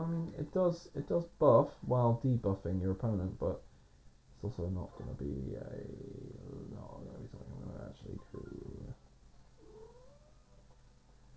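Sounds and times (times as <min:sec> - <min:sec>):
speech: 0:00.0 - 0:03.7, 0:04.4 - 0:06.7
low hum: 0:00.0 - 0:11.3
cat meowing: 0:09.6 - 0:10.7.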